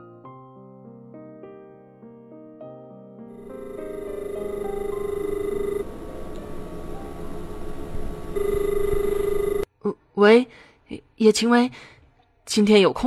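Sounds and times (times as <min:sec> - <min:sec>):
telephone ringing in steady electronic bursts: 0:03.4 - 0:09.7
speech: 0:10.2 - 0:11.9, 0:12.5 - 0:13.0.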